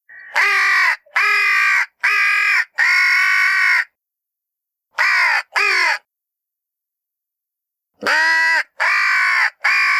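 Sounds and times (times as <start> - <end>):
crows cawing: 0.1 - 4.0, 5.0 - 6.1, 8.0 - 9.9.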